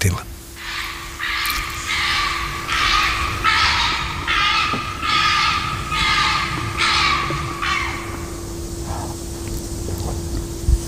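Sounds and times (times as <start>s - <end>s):
steady low hum: 0.0s - 10.8s
raccoon dog barking: 0.6s - 8.4s.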